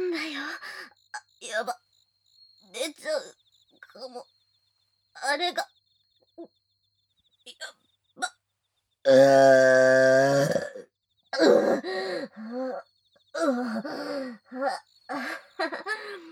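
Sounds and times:
speech: 0:01.5 - 0:01.8, 0:05.3 - 0:05.7, 0:09.1 - 0:10.6
loud low-pitched burp: 0:09.0 - 0:11.7.

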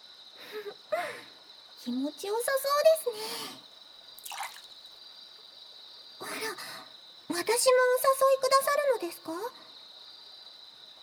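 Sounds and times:
thin steady hiss: 0:00.0 - 0:11.0
speech: 0:00.5 - 0:03.7, 0:07.4 - 0:09.7
hot bath water dripping and splashing: 0:04.2 - 0:04.9.

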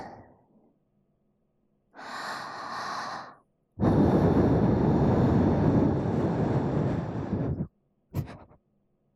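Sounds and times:
air blown into an ear after ear cleaning: 0:03.8 - 0:08.3.

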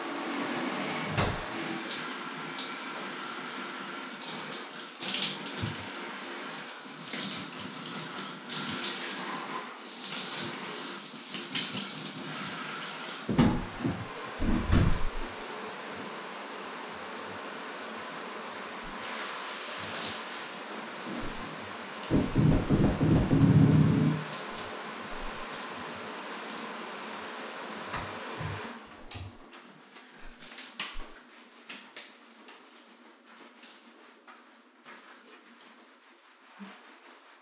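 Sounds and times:
shower water running: 0:00.0 - 0:37.4
splashes and knocks: 0:13.3 - 0:15.4, 0:21.1 - 0:25.4.

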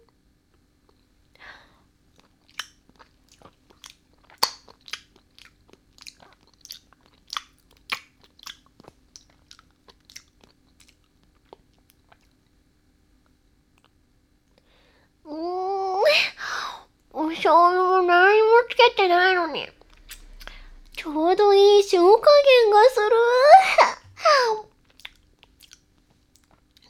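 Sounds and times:
crisp crunching and biting mouth sounds: 0:02.2 - 0:12.4, 0:24.8 - 0:26.8
mouth smacks: 0:02.2 - 0:12.4, 0:19.9 - 0:20.7, 0:24.9 - 0:26.8
speech: 0:17.5 - 0:19.8, 0:21.1 - 0:23.8.

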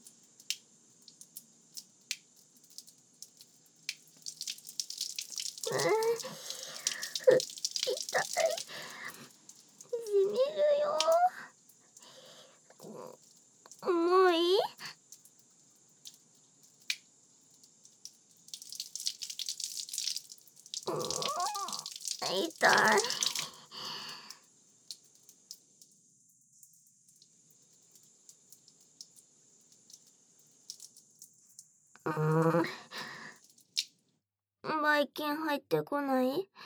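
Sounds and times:
water running from a tap as feet are washed: 0:00.0 - 0:26.0, 0:26.6 - 0:33.9
water splashing as feet are washed: 0:03.9 - 0:11.4, 0:18.6 - 0:24.0
person talking: 0:05.7 - 0:09.2, 0:09.9 - 0:11.5, 0:12.8 - 0:14.9, 0:20.9 - 0:23.5, 0:32.0 - 0:33.1, 0:34.7 - 0:36.6.

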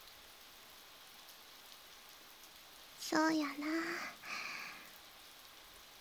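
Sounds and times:
gentle fine drizzle falling: 0:00.0 - 0:05.9
speech: 0:03.1 - 0:04.4.

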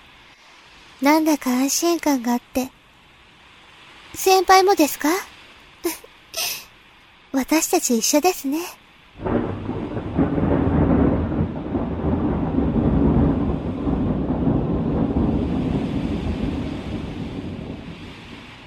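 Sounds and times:
steady rain: 0:00.0 - 0:18.6
wind: 0:00.0 - 0:18.6
speech: 0:01.0 - 0:02.8, 0:04.2 - 0:06.5, 0:07.3 - 0:09.3
long deep rumble of thunder: 0:09.2 - 0:18.6.

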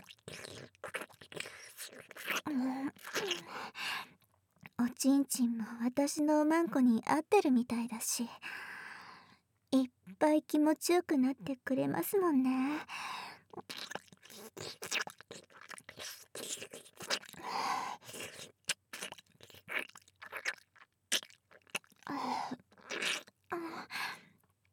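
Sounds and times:
person chewing a soft manju bun: 0:00.0 - 0:03.5, 0:13.5 - 0:23.4
speech: 0:04.9 - 0:08.7, 0:09.7 - 0:13.8.

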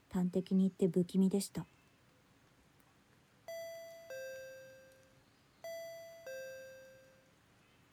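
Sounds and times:
speech: 0:00.1 - 0:01.7
electronic intercom doorbell two-tone ding-dong chime: 0:03.5 - 0:07.4.

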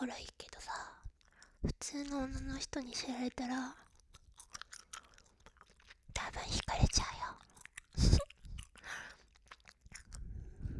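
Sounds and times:
speech: 0:00.0 - 0:00.9, 0:01.6 - 0:03.9, 0:06.2 - 0:08.3
gum being chewed close to the ear: 0:03.7 - 0:10.4.

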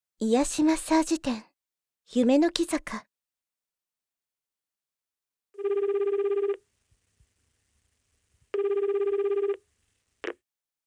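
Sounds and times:
speech: 0:00.2 - 0:01.5, 0:02.1 - 0:03.1
telephone ringing in electronic bursts: 0:05.6 - 0:06.6, 0:08.5 - 0:10.4.

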